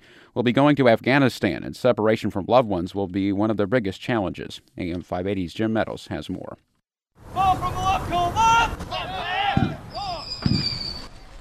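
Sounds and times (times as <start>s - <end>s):
speech: 0.4s - 6.7s
fireworks crackling outdoors: 7.2s - 11.3s
shrill rising firework whistles: 9.6s - 11.3s.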